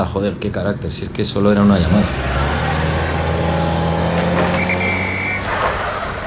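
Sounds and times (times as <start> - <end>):
speech: 0.0 - 2.6
road traffic with cars and trucks passing a road works site: 0.0 - 6.2
high squeal: 2.7 - 6.2.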